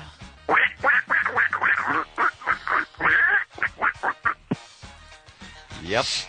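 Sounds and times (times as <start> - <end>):
duck quacking: 0.5 - 4.6
speech: 5.9 - 6.2.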